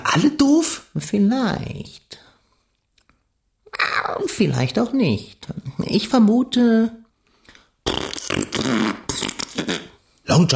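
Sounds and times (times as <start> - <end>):
speech: 0.2 - 2.1, 4.1 - 7.0, 7.9 - 9.0, 9.6 - 10.5
loud raspberry blown with the lips imitating a fart: 7.8 - 10.0.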